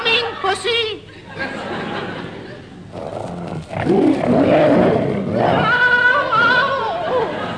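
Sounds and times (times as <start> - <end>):
laughter: 0.2 - 2.9, 6.2 - 7.5
tiger roar sound effect: 2.9 - 6.8.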